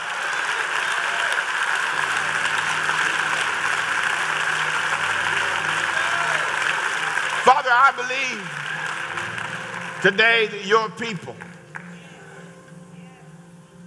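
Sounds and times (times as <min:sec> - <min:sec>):
large audience clapping at a worship service: 0:00.0 - 0:12.7
audience shouting at a worship service: 0:02.0 - 0:09.2
speech: 0:07.7 - 0:08.7, 0:10.0 - 0:11.5.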